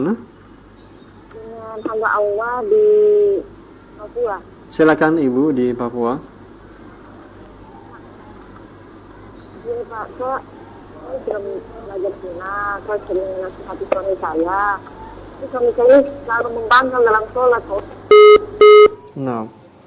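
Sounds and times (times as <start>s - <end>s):
speech: 0.0s - 0.3s, 2.0s - 6.3s, 9.8s - 19.6s
short loud electronic tone bursts as the phone call cuts off: 18.1s - 19.1s.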